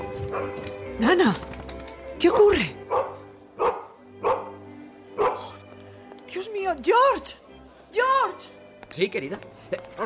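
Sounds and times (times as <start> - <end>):
female dog barking: 0.3 - 0.6, 2.9 - 4.6, 5.2 - 5.6
speech: 0.4 - 1.6, 2.2 - 2.8, 6.7 - 10.0.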